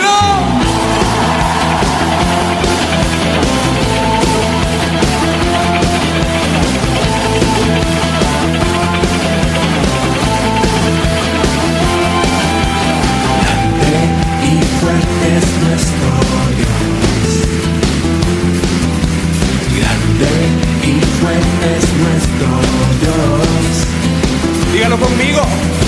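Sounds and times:
band music during church worship: 0:00.0 - 0:25.8
large church audience shouting and cheering during worship: 0:00.0 - 0:25.8.

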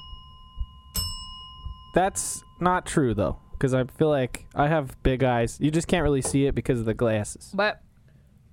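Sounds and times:
bell struck with a bright metallic clang: 0:00.0 - 0:06.5
soft low thumps: 0:00.0 - 0:07.0
speech: 0:02.0 - 0:07.8.

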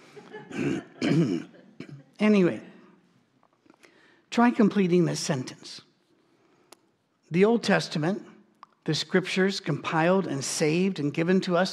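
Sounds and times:
person coughing roughly: 0:00.4 - 0:02.2
speech: 0:00.5 - 0:01.6, 0:02.2 - 0:02.7, 0:04.4 - 0:05.9, 0:07.3 - 0:11.7.

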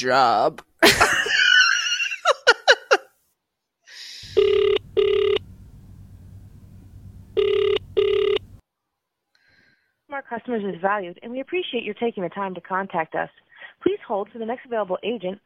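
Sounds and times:
speech: 0:00.0 - 0:01.3, 0:10.2 - 0:15.4
burst of laughter: 0:00.8 - 0:03.1
double-pulsed phone ringback tones on an outgoing call: 0:04.2 - 0:08.6
low telephone line hum: 0:04.3 - 0:08.6.

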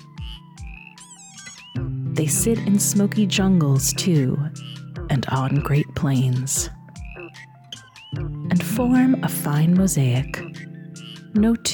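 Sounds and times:
speech: 0:01.8 - 0:06.8, 0:08.8 - 0:10.4, 0:11.4 - 0:11.7
frogs croaking in a dense chorus: 0:06.9 - 0:08.4, 0:10.3 - 0:11.3.

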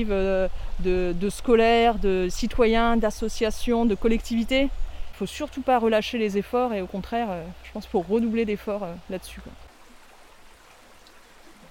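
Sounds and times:
speech: 0:00.0 - 0:09.6
river water flowing in France: 0:00.0 - 0:11.6.

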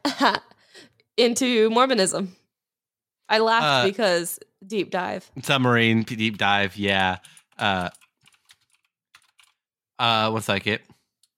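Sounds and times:
speech: 0:00.2 - 0:02.4, 0:03.3 - 0:08.0, 0:10.0 - 0:11.0
short voiced sound: 0:03.6 - 0:03.9
clicky computer keyboard typing: 0:06.2 - 0:09.6.

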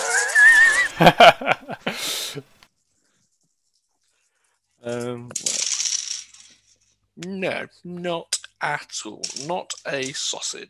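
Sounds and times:
laughter: 0:00.8 - 0:02.4
speech: 0:01.0 - 0:02.5, 0:07.5 - 0:10.6
dice rolling on a tabletop in a game: 0:04.9 - 0:06.9, 0:09.2 - 0:10.2.

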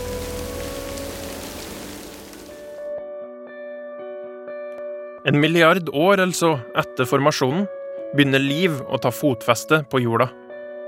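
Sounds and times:
steady dense rain hissing: 0:00.0 - 0:02.9
speech: 0:05.2 - 0:10.4.

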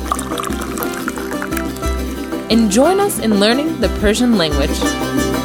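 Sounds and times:
tea pouring into a cup: 0:00.0 - 0:01.6
speech: 0:02.5 - 0:05.3.

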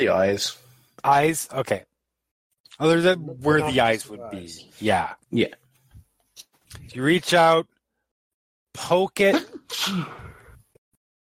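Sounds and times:
speech: 0:00.0 - 0:01.9, 0:02.7 - 0:05.6, 0:06.4 - 0:07.7, 0:08.8 - 0:10.2
person sneezing: 0:09.3 - 0:10.5.

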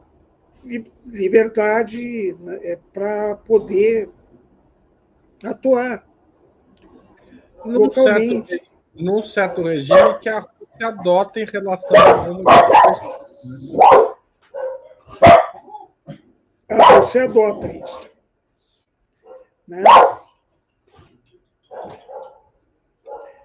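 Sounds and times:
speech: 0:00.6 - 0:04.2, 0:05.4 - 0:06.1, 0:07.6 - 0:14.0, 0:17.0 - 0:18.1, 0:19.7 - 0:20.2
dogs barking at neighbors' dogs across the street: 0:09.4 - 0:10.3, 0:11.8 - 0:16.0, 0:16.7 - 0:18.1, 0:19.2 - 0:20.3, 0:21.7 - 0:23.4.

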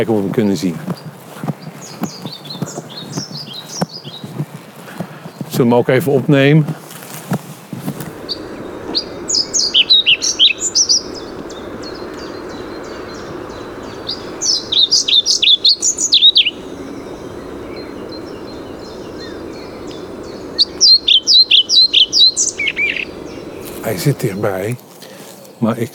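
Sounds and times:
speech: 0:00.0 - 0:01.1, 0:05.6 - 0:06.8, 0:24.0 - 0:24.9, 0:25.6 - 0:25.9
faint insect buzzing: 0:07.9 - 0:24.8
low outdoor hum: 0:07.9 - 0:24.9
European pied flycatcher singing: 0:08.0 - 0:24.6.

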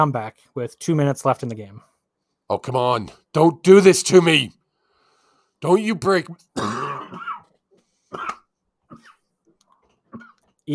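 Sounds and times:
speech: 0:00.0 - 0:01.9, 0:02.5 - 0:04.6, 0:05.6 - 0:06.8
person clearing throat: 0:06.6 - 0:07.5, 0:08.1 - 0:09.3, 0:10.1 - 0:10.4
person coughing: 0:06.6 - 0:07.5, 0:08.1 - 0:09.3, 0:10.1 - 0:10.4.

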